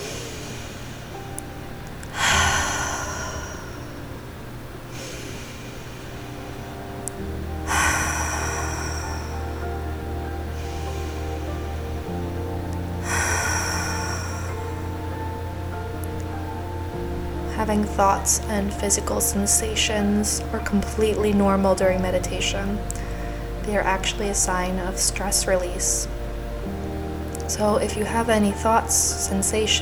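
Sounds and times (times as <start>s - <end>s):
slow deep cleansing breaths during a meditation practice: 0.0s - 17.5s, 22.6s - 23.8s
soft sustained music: 0.0s - 29.8s
speech: 17.7s - 23.0s, 23.7s - 26.2s, 27.5s - 29.8s.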